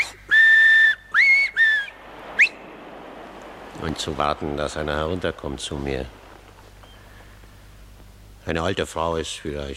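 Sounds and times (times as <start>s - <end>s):
shrill finger whistles: 0.0s - 2.6s
brief upward whistle chirp: 0.0s - 2.9s
speech: 3.8s - 6.2s, 8.5s - 9.7s.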